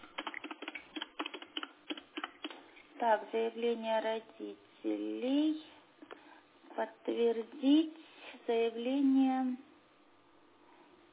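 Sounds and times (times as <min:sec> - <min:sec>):
typing on a computer keyboard while a form entry is filled in: 0:00.0 - 0:02.6
speech: 0:03.0 - 0:05.7, 0:06.8 - 0:09.7.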